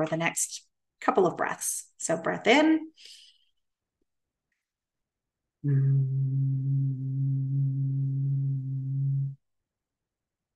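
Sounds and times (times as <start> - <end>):
speech: 0.0 - 3.2, 5.6 - 6.7
person humming one steady low note: 5.6 - 9.4.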